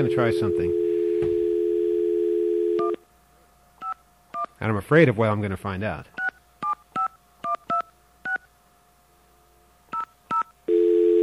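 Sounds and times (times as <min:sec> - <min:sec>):
speech: 0:00.0 - 0:01.4, 0:04.6 - 0:06.2
telephone dial tone: 0:00.0 - 0:03.0, 0:10.3 - 0:11.2
keypad beeps: 0:03.8 - 0:04.5, 0:06.2 - 0:08.5, 0:09.9 - 0:10.5.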